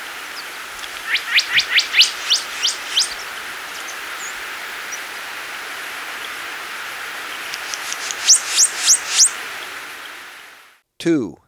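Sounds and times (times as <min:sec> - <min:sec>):
Tit-like dacnis giving thin upslurred notes in Ecuador: 0:00.0 - 0:10.4
speech: 0:11.0 - 0:11.4.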